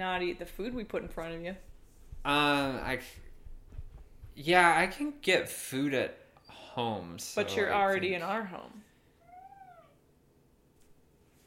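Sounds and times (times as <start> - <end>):
speech: 0.0 - 3.3, 4.4 - 8.9
steady low hum: 0.0 - 11.4
cat meowing: 9.2 - 10.0.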